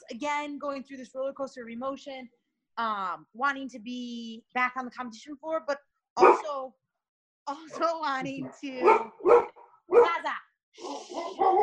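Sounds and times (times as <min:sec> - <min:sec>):
speech: 0:00.1 - 0:06.8, 0:07.5 - 0:11.6
dog barking: 0:06.2 - 0:06.5, 0:08.3 - 0:10.2, 0:11.2 - 0:11.6.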